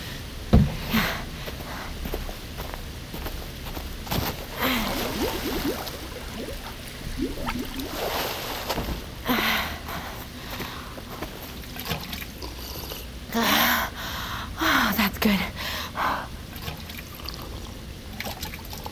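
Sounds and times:
steady hiss: 0:00.0 - 0:16.5
person drinking water as a taste test: 0:04.4 - 0:08.8, 0:10.6 - 0:13.1.

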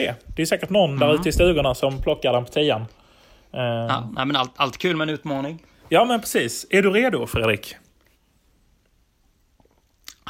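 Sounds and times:
speech: 0:00.0 - 0:07.8
person sipping a soft drink: 0:09.5 - 0:10.2
quiet mouth sounds: 0:09.5 - 0:10.2
slurping or swallowing: 0:09.5 - 0:10.2.

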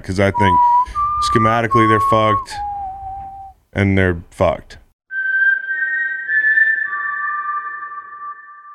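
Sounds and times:
speech: 0:00.0 - 0:02.7, 0:03.7 - 0:04.8
whistled signal tune: 0:00.4 - 0:03.6, 0:05.1 - 0:08.7.

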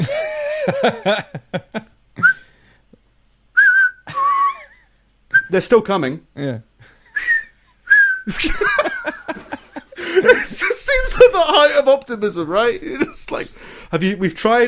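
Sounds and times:
laughter: 0:00.0 - 0:02.0, 0:04.1 - 0:05.0, 0:06.8 - 0:10.8
speech: 0:00.7 - 0:01.8, 0:05.5 - 0:07.3, 0:08.2 - 0:09.4, 0:10.1 - 0:14.6
people whistling shrilly to scare off locusts: 0:03.6 - 0:04.5, 0:07.2 - 0:08.3.

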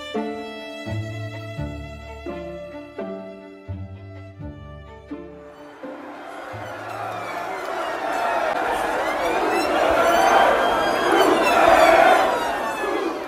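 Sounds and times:
crowd of young revellers shouting and chanting in a city-centre street: 0:05.3 - 0:13.2.

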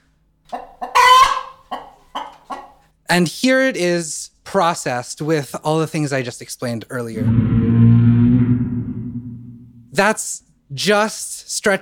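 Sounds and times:
chicken clucking: 0:00.5 - 0:02.8
speech: 0:03.1 - 0:08.0, 0:10.0 - 0:11.8.

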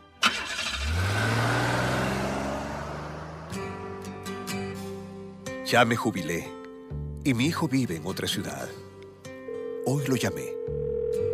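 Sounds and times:
car engine cranking, revving and pulling away: 0:00.2 - 0:05.2
speech: 0:05.7 - 0:06.6, 0:07.2 - 0:08.9, 0:09.8 - 0:10.9.

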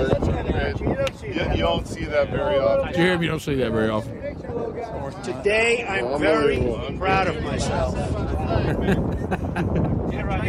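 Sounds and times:
gusty wind buffeting the microphone on a golf course: 0:00.0 - 0:10.4
speech: 0:01.5 - 0:10.4
laughter: 0:08.3 - 0:10.4.

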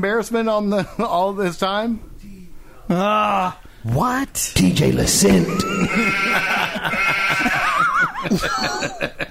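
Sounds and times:
speech: 0:00.0 - 0:02.1, 0:02.9 - 0:09.2
laughter: 0:05.3 - 0:09.2
sheep bleating: 0:05.9 - 0:07.8.

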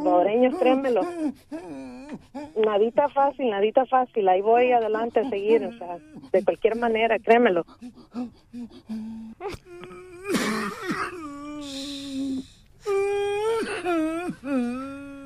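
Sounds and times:
person crying and whimpering: 0:00.0 - 0:03.3, 0:04.5 - 0:15.2
gasping breaths: 0:00.4 - 0:02.6, 0:05.1 - 0:06.9, 0:07.6 - 0:15.2
speech: 0:00.5 - 0:14.9.

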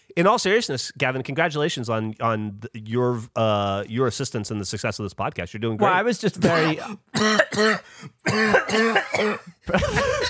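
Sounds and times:
speech: 0:00.2 - 0:10.2
man's harsh hacking coughing fit: 0:06.4 - 0:10.2.

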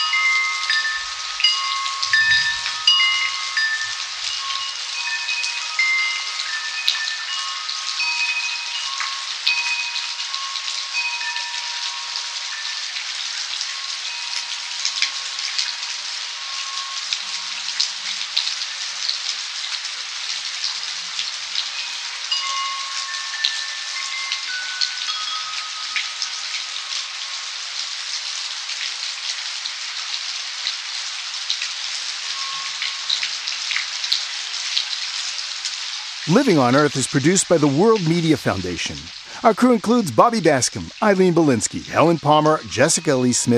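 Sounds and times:
wind chimes ringing: 0:00.0 - 0:18.8, 0:21.6 - 0:28.6, 0:31.8 - 0:43.5
dense midnight rainstorm in California: 0:00.0 - 0:43.5
speech: 0:36.3 - 0:43.5.

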